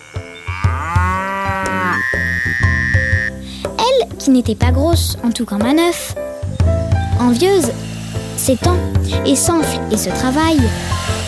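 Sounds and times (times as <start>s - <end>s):
ox mooing: 0.0s - 3.5s
steady rhythmic musical backing: 0.0s - 11.2s
speech: 4.2s - 6.2s, 7.2s - 11.0s.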